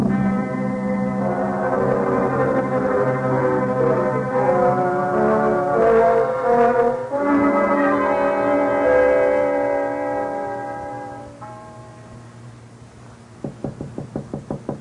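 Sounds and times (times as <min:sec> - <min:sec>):
sustained musical chord: 0:00.0 - 0:13.0
firm knocking on a door: 0:13.4 - 0:14.8.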